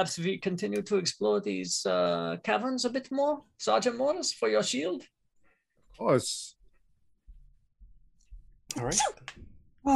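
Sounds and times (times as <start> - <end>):
speech: 0.0 - 5.2, 6.0 - 6.6, 8.7 - 9.9
person sneezing: 8.7 - 9.3.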